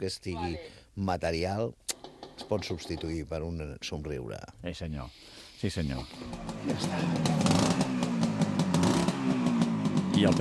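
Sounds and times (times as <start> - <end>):
speech: 0.0 - 7.8, 10.2 - 10.4
motorcycle engine running: 6.1 - 10.4.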